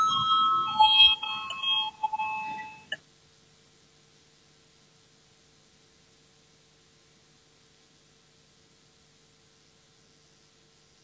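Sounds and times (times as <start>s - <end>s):
parliamentary voting bell ringing: 0.0s - 3.0s.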